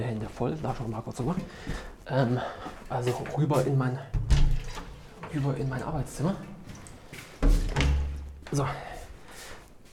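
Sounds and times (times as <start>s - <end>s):
speech: 0.0s - 4.2s, 5.3s - 6.5s, 8.5s - 8.9s
door thudding: 7.4s - 8.3s.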